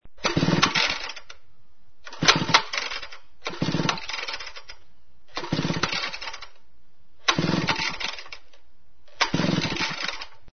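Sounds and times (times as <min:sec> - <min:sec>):
chainsaw: 0:00.2 - 0:01.3, 0:02.1 - 0:04.7, 0:05.4 - 0:06.5, 0:07.3 - 0:08.4, 0:09.2 - 0:10.4.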